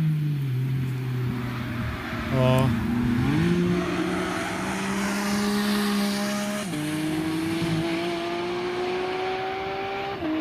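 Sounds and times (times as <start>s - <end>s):
sports car engine revving with manual gear shifts: 0.9s - 10.4s.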